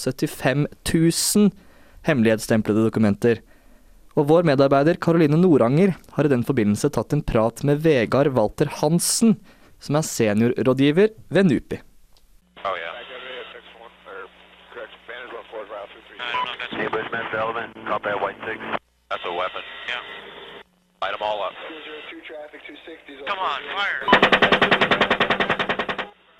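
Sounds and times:
speech: 0.0 - 3.5, 4.2 - 11.9, 17.1 - 20.3, 21.0 - 25.4
radio-style voices crackling: 12.6 - 24.7
automatic gunfire from American helicopter attack in Iraq: 24.1 - 26.1.

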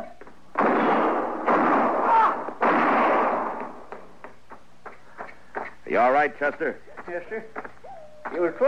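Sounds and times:
rapid volley of sharp gunshots in a shootout: 0.5 - 3.9
speech: 6.0 - 7.7, 8.4 - 8.6.

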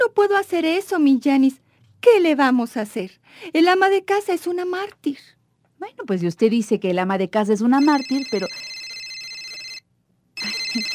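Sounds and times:
speech: 0.2 - 8.7, 10.8 - 10.9
old landline telephone bell ringing: 7.8 - 10.9.

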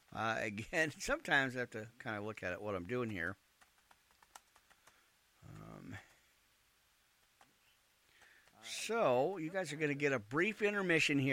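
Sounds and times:
speech: 0.2 - 3.4, 8.6 - 11.3
typing on a computer keyboard: 3.0 - 6.2.

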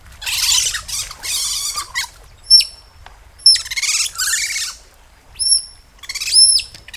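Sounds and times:
otter shrill squeaky whistles and chirps: 0.2 - 2.8, 3.4 - 4.8, 5.4 - 6.9.

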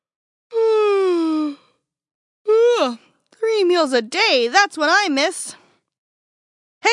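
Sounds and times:
person yawning: 0.6 - 1.7
speech: 3.6 - 5.6.

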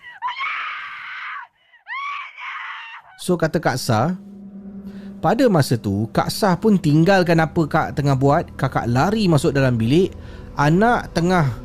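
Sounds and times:
child screaming loudly and shrilly: 0.0 - 3.2
speech: 3.2 - 4.3, 5.2 - 11.6.

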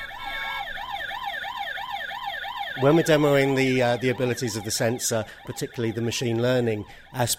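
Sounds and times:
toy fire truck siren wailing in a fast repeating rise and fall: 0.0 - 7.3
speech: 2.8 - 7.3.

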